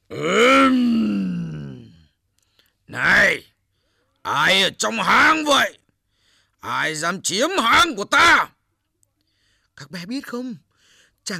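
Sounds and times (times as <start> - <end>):
human voice imitating a monster's roar: 0.1 - 2.0
speech: 4.7 - 5.8, 6.6 - 8.5, 9.8 - 11.3.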